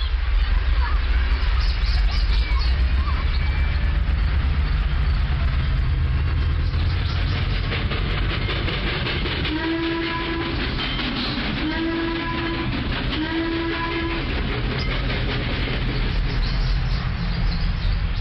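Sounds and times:
train rolling along rails: 0:00.0 - 0:18.1
train horn blasts: 0:09.4 - 0:10.6, 0:11.6 - 0:14.3.

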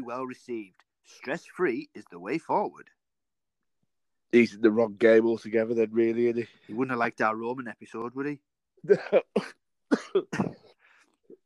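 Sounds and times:
speech: 0:00.0 - 0:03.0, 0:04.3 - 0:10.6
harsh coughing fit: 0:08.9 - 0:10.8.

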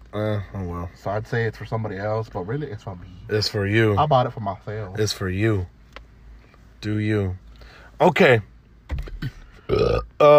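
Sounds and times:
speech: 0:00.1 - 0:05.8, 0:06.8 - 0:07.4, 0:08.0 - 0:10.3
loud burps: 0:09.6 - 0:10.3.

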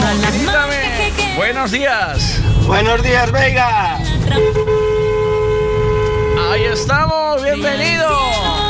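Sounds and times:
low rumble of traffic: 0:00.5 - 0:08.6
speech: 0:01.4 - 0:04.9, 0:06.4 - 0:08.5
car horn blast: 0:02.2 - 0:07.1.

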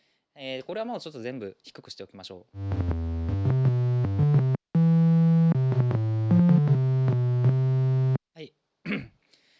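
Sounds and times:
speech: 0:00.4 - 0:02.9
buzzy analog synthesizer with filter cutoff being adjusted: 0:02.6 - 0:08.2.

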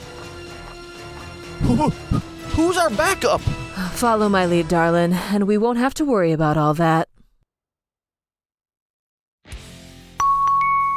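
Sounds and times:
speech: 0:01.6 - 0:07.1
pizzeria door bell ringing as people walk in: 0:10.2 - 0:10.9.

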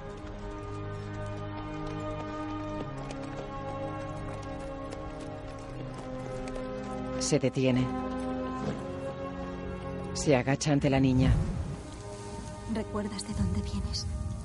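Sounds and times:
horse hooves cantering: 0:00.0 - 0:12.7
speech: 0:07.2 - 0:08.1, 0:10.2 - 0:11.5, 0:12.7 - 0:14.2.

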